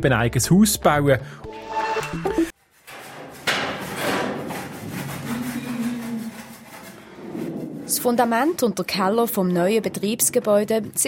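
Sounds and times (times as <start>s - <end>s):
speech: 0.0s - 2.5s, 7.9s - 11.0s
scraping, rattling noise from construction work: 2.7s - 9.1s
clattering impacts: 2.8s - 8.4s
loud hammer blows on wood knocking apart wooden pallets: 2.9s - 7.4s.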